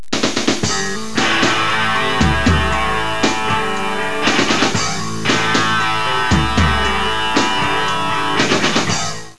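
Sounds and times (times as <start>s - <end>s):
flanged bass: 0.7s - 9.3s.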